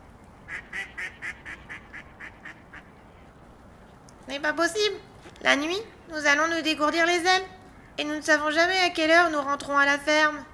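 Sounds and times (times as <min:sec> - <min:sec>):
duck quacking: 0:00.5 - 0:03.3
speech: 0:04.3 - 0:10.5.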